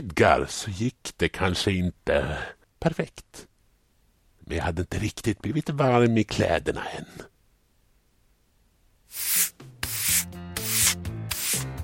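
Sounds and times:
speech: 0.0s - 3.5s, 4.5s - 7.3s
scrubbing strokes on a floor: 9.1s - 11.6s.

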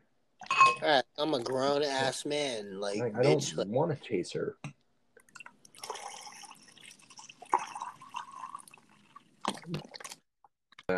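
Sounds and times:
clinks: 0.4s - 0.9s
speech: 0.8s - 4.8s
liquor poured from a bottle: 5.2s - 10.9s.

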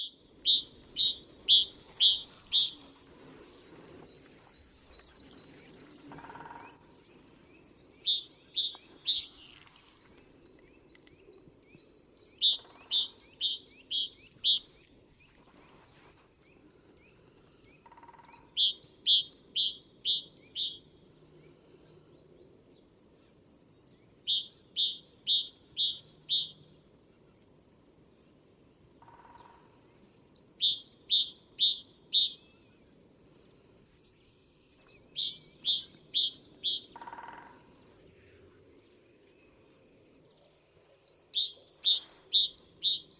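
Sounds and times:
common chaffinch singing: 0.0s - 15.3s, 16.4s - 20.9s, 24.0s - 26.7s, 29.7s - 32.8s, 34.7s - 37.4s, 41.0s - 43.1s.

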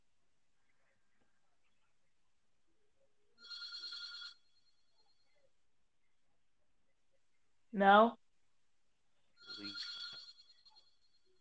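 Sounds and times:
telephone ringing faintly in the background: 3.4s - 5.2s, 9.4s - 11.3s
speech: 7.8s - 8.2s.

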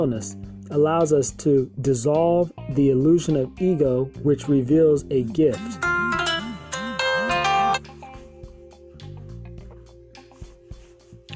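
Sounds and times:
speech: 0.0s - 5.9s
sustained tones: 5.5s - 7.8s
phone ringtone electronic melody: 5.5s - 8.0s.

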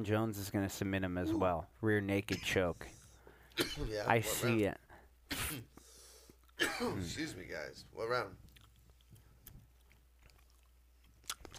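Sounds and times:
speech: 0.0s - 3.0s, 3.6s - 5.8s, 6.6s - 8.5s
quiet gum chewing: 8.4s - 11.5s
soft irregular wet smacks and clicks of chewing gum: 8.4s - 11.5s.

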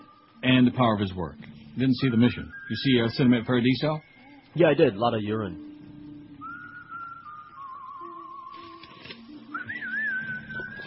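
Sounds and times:
soft musical accompaniment with low bass tones: 0.0s - 10.8s
speech: 0.4s - 5.7s
whistled melody on a record: 1.9s - 4.4s, 6.2s - 10.8s.

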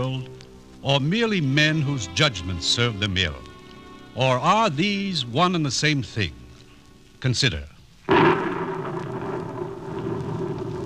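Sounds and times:
speech: 0.0s - 3.5s, 4.2s - 6.4s, 7.2s - 7.7s
soft hiss of rain: 0.0s - 10.8s
deep rolling thunder of a thunderstorm: 8.1s - 10.8s.

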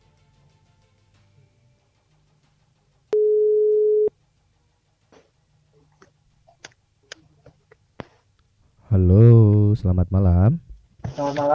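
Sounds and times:
telephone ringing tone beep while placing a call: 3.2s - 4.1s
speech: 9.8s - 10.6s, 11.2s - 11.5s.

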